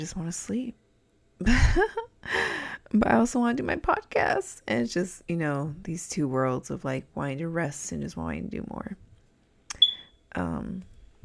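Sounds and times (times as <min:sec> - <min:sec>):
speech: 0:00.0 - 0:00.8, 0:01.4 - 0:09.0, 0:10.4 - 0:10.9
smoke detector chirp: 0:09.8 - 0:10.2.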